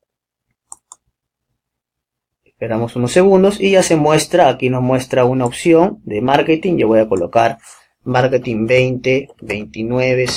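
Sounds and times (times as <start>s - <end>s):
faint mouse clicks on a publish button: 0.6s - 1.1s
speech: 2.6s - 10.3s.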